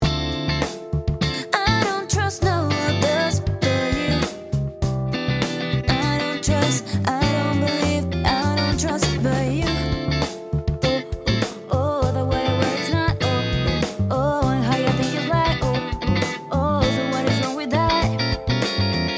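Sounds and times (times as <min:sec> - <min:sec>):
Variax modelled Stratocaster electric guitar: 0:00.0 - 0:19.1.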